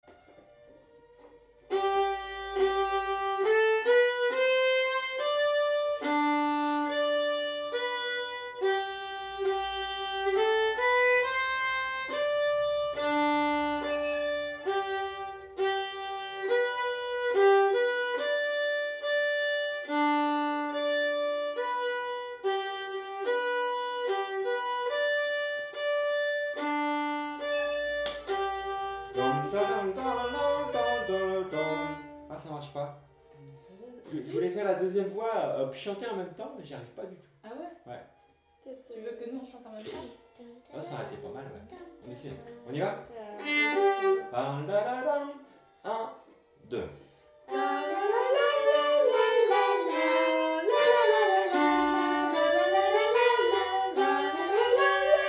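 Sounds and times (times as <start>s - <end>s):
violin playing a schottische second voice part: 0.0s - 37.1s, 37.9s - 55.2s
person singing a funny song: 29.1s - 32.2s, 47.5s - 55.2s.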